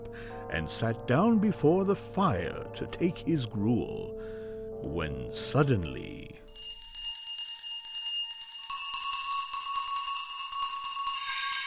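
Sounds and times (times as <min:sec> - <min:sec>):
speech: 0:00.1 - 0:06.6
many house bells ringing at once: 0:06.5 - 0:11.6.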